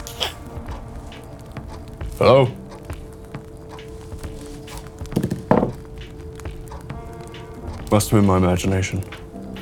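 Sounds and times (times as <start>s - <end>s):
dull thudding knocks: 0.4s - 8.3s
speech: 2.2s - 2.6s, 7.9s - 9.2s.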